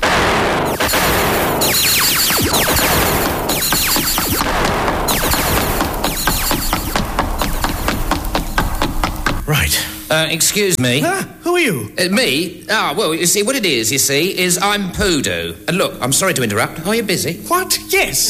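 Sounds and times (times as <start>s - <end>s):
heavy sustained gunfire: 0.0s - 9.5s
speech: 10.3s - 18.2s.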